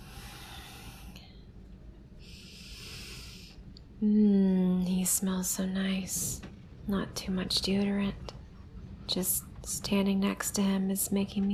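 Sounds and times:
deep breathing: 0.0 - 1.6, 2.2 - 3.8
low steady rumble: 0.0 - 11.5
speech: 4.0 - 4.4, 5.1 - 8.4, 9.1 - 11.5.

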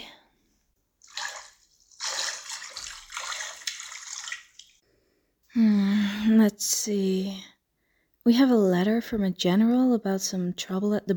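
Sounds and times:
water sloshing and splashing in a bath: 1.0 - 4.8
speech: 6.4 - 7.5, 8.2 - 11.1.

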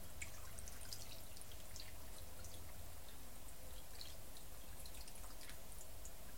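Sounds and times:
water pouring from a kettle: 0.1 - 6.2.

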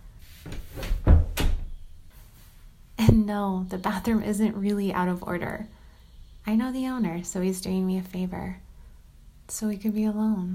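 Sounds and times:
door pushed shut with a heavy thud: 0.4 - 1.8
speech: 3.2 - 5.8, 6.4 - 8.6, 9.5 - 10.5.

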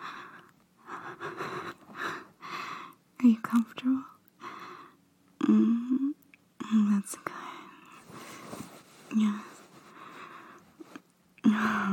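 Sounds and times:
soft breathing very close to the ear: 0.0 - 3.0, 4.4 - 5.0, 6.9 - 11.9
speech: 3.2 - 4.1.

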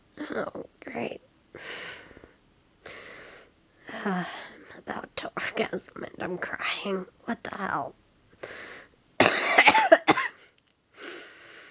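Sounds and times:
speech: 0.4 - 1.2, 5.6 - 8.0
person coughing: 9.2 - 10.4.

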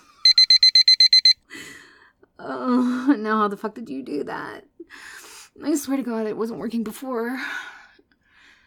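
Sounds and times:
kitchen timer alarm beeping: 0.3 - 1.4
speech: 3.2 - 7.7.

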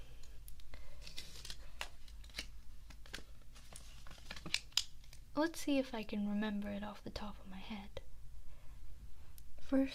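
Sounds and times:
paper rustling and crinkling while being picked up: 0.9 - 5.2
speech: 5.4 - 8.0, 9.7 - 9.9.

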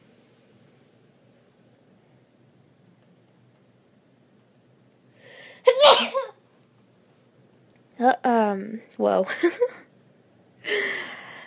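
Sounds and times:
soft intake of breath: 5.1 - 5.7, 10.6 - 11.4
person getting over a cold sneezing: 5.7 - 6.3
speech: 8.0 - 9.8.

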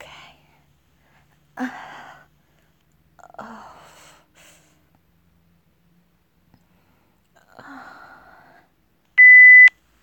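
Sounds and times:
speech: 1.6 - 1.8
electronic timer beep: 9.2 - 9.7.

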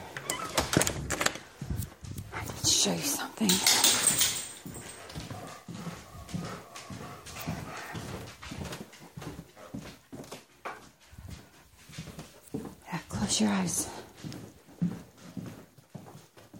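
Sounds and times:
dog claws tapping the floor: 0.8 - 6.0
dog panting: 1.5 - 15.6
speech: 2.8 - 3.9, 13.4 - 14.0.

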